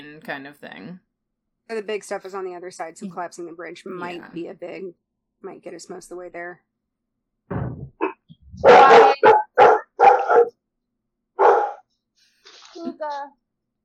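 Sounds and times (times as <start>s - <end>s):
speech: 0.2s - 1.1s, 1.7s - 6.7s, 13.0s - 13.4s
dog barking: 8.0s - 10.6s, 11.4s - 11.8s.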